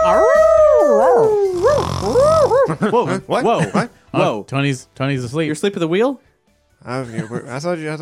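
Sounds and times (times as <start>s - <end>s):
person imitating a confused dog howl: 0.0s - 2.7s
speech: 2.8s - 8.0s.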